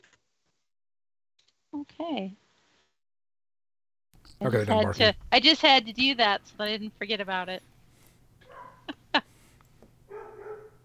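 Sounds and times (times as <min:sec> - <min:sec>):
speech: 0:01.7 - 0:02.4, 0:04.4 - 0:07.7
dogs barking, yipping and whining in the background: 0:08.4 - 0:09.0, 0:10.1 - 0:10.8.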